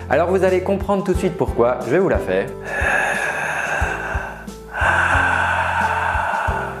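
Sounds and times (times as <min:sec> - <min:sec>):
speech: 0:00.1 - 0:03.3
raspy breathing through a constricted throat: 0:02.6 - 0:06.7.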